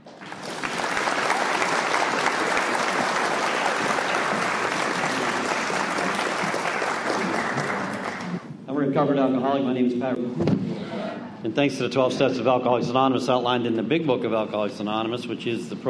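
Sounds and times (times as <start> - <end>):
audience applause welcoming a speaker: 0.0 - 8.5
speech: 9.0 - 10.6, 11.4 - 15.8.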